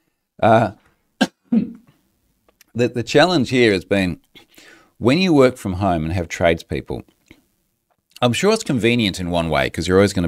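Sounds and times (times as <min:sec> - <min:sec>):
speech: 0:00.4 - 0:00.8, 0:01.5 - 0:01.8, 0:02.8 - 0:07.2, 0:08.2 - 0:10.2
person coughing: 0:01.2 - 0:01.9.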